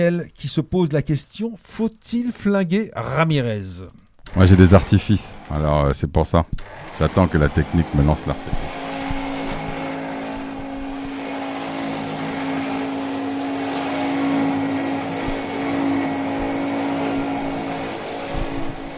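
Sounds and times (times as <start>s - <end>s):
speech: 0.0s - 8.8s
vacuum cleaner running: 4.3s - 5.9s, 6.6s - 18.9s.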